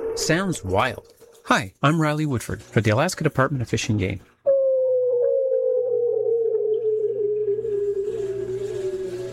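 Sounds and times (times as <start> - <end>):
speech: 0.2 - 4.3
male bearded seal mating call recorded by hydrophone through ice off Diomede Island: 4.5 - 9.3.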